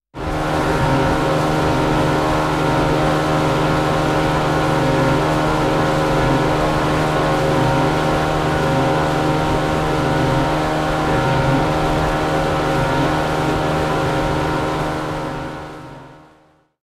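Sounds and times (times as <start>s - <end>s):
boat sailing: 0.2s - 16.2s.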